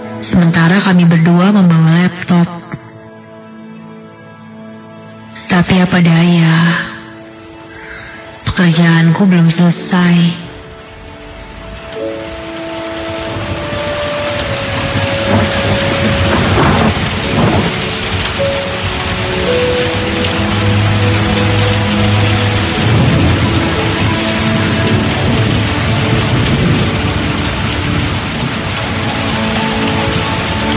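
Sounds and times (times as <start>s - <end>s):
steady rain pattering on surfaces: 0.0s - 3.0s, 5.1s - 30.7s
speech: 0.2s - 2.6s, 5.6s - 6.9s, 8.6s - 10.4s.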